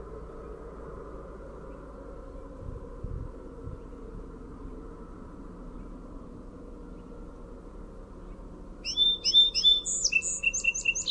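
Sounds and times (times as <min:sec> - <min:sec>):
low hum: 0:00.0 - 0:11.0
song sparrow singing: 0:08.2 - 0:11.0.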